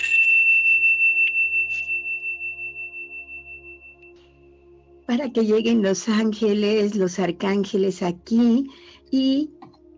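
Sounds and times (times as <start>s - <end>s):
tuning fork ringing after being struck: 0.0s - 5.8s
speech: 5.1s - 9.6s.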